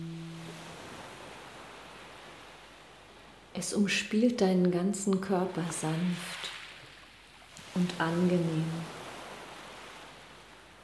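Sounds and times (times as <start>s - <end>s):
brief low humming tone: 0.0s - 1.3s
soft steady wash of ocean surf: 0.0s - 3.6s, 5.9s - 10.8s
speech: 3.6s - 6.6s, 7.8s - 9.0s.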